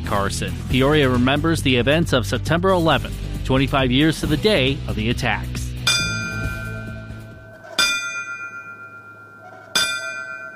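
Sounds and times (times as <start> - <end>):
speech: 0.1 - 5.6
church bell ringing in slow strikes at memorial ceremony: 5.8 - 10.5.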